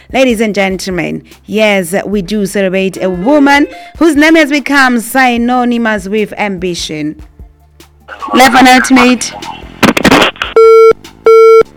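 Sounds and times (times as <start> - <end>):
speech: 0.1 - 7.3, 8.1 - 9.6
telephone busy signal after a dropped line: 10.6 - 11.7.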